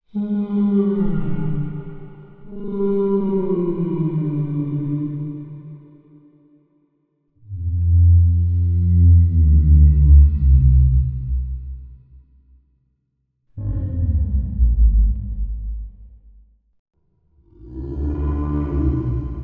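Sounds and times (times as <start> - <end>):
large whale: 0.1 - 5.8, 7.4 - 12.0, 13.6 - 16.2, 17.4 - 19.4.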